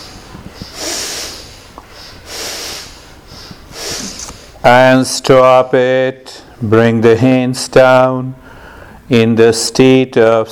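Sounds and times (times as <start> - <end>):
rhythmic breathing through the nose during a breathing exercise: 0.0 - 4.6, 8.4 - 9.1
speech: 4.6 - 8.4, 9.1 - 10.4.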